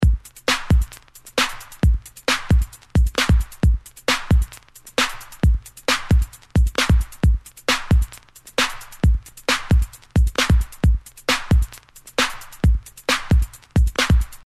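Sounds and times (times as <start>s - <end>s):
breaks and beats drum loop: 0.0s - 14.4s.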